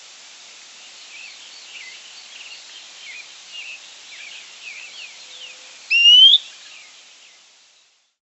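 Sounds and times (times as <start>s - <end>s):
Fuscous Flycatcher Cnemotriccus fuscatus rising whistle: 5.9s - 6.4s.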